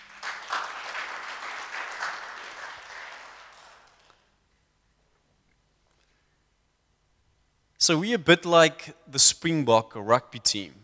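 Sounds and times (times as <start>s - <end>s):
crowd applauding: 0.0s - 4.3s
speech: 7.8s - 10.8s.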